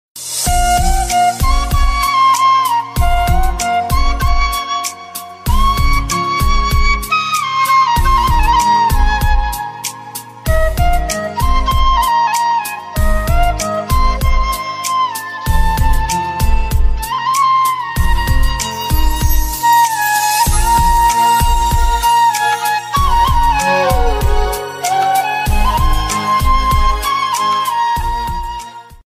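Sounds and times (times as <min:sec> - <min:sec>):
instrumental flute music: 0:00.4 - 0:29.0.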